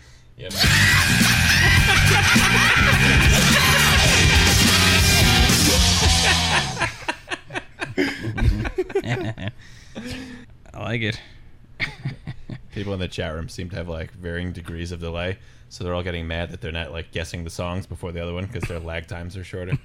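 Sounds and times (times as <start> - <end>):
speech: 0.4 - 0.6, 11.0 - 11.3, 12.9 - 19.8
yelling sound effect: 0.5 - 6.9
laughter: 0.5 - 10.3.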